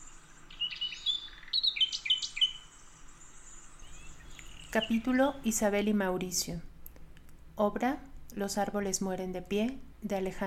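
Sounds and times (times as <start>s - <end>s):
nightingale singing: 0.0s - 5.8s
speech: 4.7s - 6.7s, 7.6s - 10.4s.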